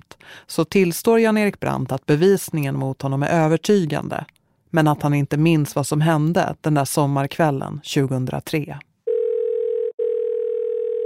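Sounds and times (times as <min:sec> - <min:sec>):
speech: 0:00.3 - 0:08.9
telephone call tone: 0:09.1 - 0:11.0.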